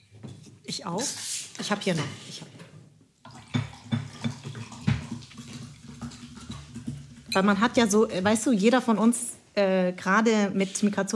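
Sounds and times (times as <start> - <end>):
speech: 0.7 - 2.6, 7.4 - 11.1
water running and splashing: 3.2 - 8.2
gurgles and knocks: 3.3 - 7.6.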